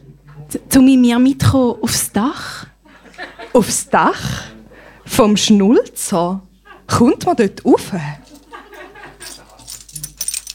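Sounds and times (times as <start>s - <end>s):
speech: 0.5s - 8.2s
laughter: 2.8s - 4.0s, 6.6s - 7.2s, 8.2s - 9.9s
bunch of keys jingling: 8.2s - 10.5s.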